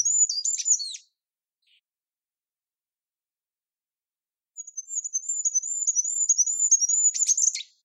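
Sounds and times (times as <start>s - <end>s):
Goldcrest song of high thin wavering notes: 0.0s - 1.9s, 4.6s - 7.8s.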